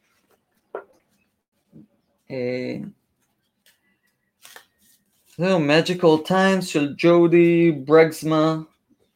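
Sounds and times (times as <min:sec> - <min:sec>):
speech: 0:02.3 - 0:03.0, 0:05.4 - 0:08.7
deck of cards riffling: 0:03.4 - 0:05.4.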